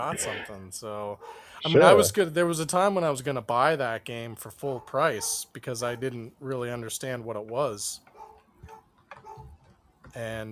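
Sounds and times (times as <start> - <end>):
speech: 0.0 - 8.8, 10.1 - 10.5
dog barking: 1.2 - 1.5, 4.8 - 6.1, 8.2 - 9.6.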